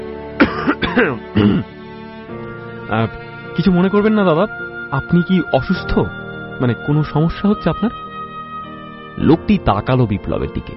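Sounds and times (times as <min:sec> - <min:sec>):
man coughing loudly and harshly, clearing his throat: 0:00.4 - 0:01.7
speech: 0:01.0 - 0:01.8, 0:02.9 - 0:08.0, 0:09.2 - 0:10.7.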